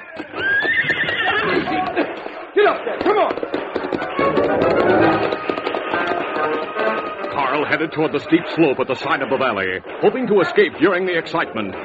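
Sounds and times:
rough commotion: 0.0 - 11.8
horse neighing: 0.3 - 2.0
speech: 2.6 - 3.6, 7.6 - 11.8.

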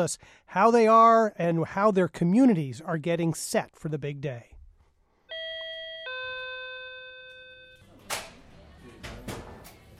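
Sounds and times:
speech: 0.0 - 4.5
two-tone ding-dong doorbell chime at a marijuana dispensary entrance in Leicester Massachusetts: 5.3 - 7.8.

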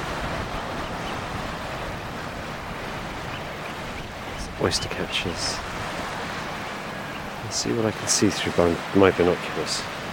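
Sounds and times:
wind buffeting: 0.0 - 8.0
sea surf breaking below a rocky headland: 0.0 - 10.1
speech: 4.6 - 5.7, 7.5 - 10.0.

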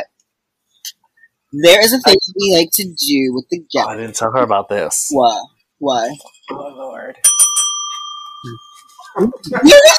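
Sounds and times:
speech: 1.5 - 7.4, 8.4 - 9.9
small metallic bell being struck: 7.2 - 9.9.

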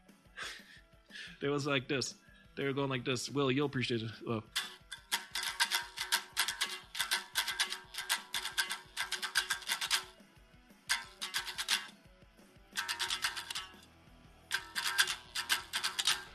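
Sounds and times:
speech: 1.4 - 4.6
rhythmic tapping imitating two mashed-up rock riffs: 3.7 - 16.3.

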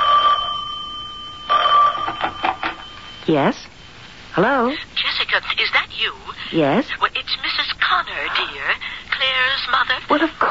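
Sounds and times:
telephone ringing with an electronic trill in a house: 0.0 - 4.6
speech: 3.3 - 3.7, 4.4 - 10.4.

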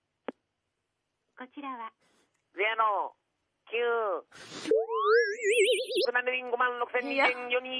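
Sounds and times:
speech: 1.4 - 7.7
goofy voicemail signal tone on a phone answering service: 4.7 - 6.1.

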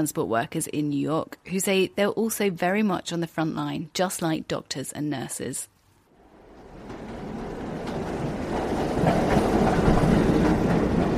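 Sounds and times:
speech: 0.0 - 5.7
New York City subway train rumbling along the tracks: 6.2 - 11.1.

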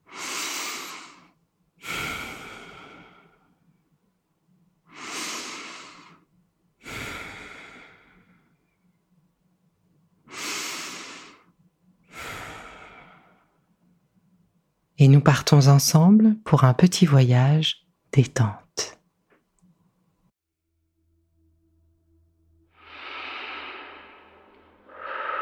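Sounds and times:
deep breaths during a guided relaxation exercise: 0.0 - 3.9, 4.9 - 8.9, 10.3 - 13.7, 22.8 - 25.4
speech: 15.0 - 19.0.

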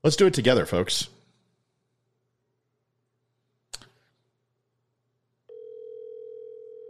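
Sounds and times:
speech: 0.0 - 1.2
steady loud continuous telephone dial tone: 5.5 - 6.8.

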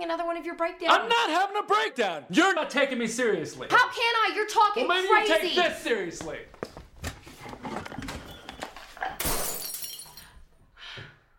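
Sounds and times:
speech: 0.0 - 6.8
tinkling glass shards settling: 9.2 - 10.4
window glass shattering: 9.2 - 10.4.

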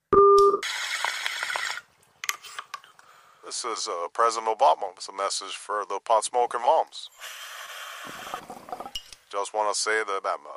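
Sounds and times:
steady electronic answering-machine beep: 0.2 - 0.6
speech: 3.5 - 7.4, 9.4 - 10.5.

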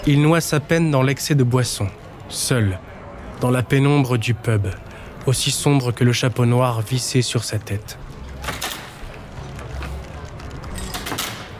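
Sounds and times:
speech: 0.0 - 8.6
pub front door creaking open on a groaning hinge: 8.3 - 11.5.

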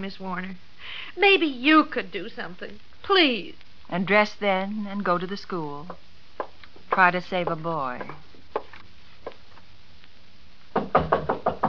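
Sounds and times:
speech: 0.0 - 6.1, 6.9 - 8.3
faint taps: 5.9 - 10.1
knocking on a wooden door: 10.8 - 11.6.

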